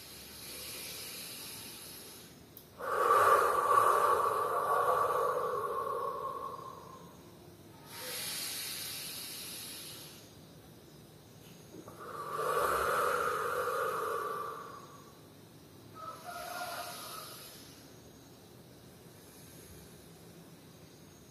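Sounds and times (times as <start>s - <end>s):
exaggerated deep breaths during a breathing exercise: 0.0s - 10.3s, 11.8s - 17.8s.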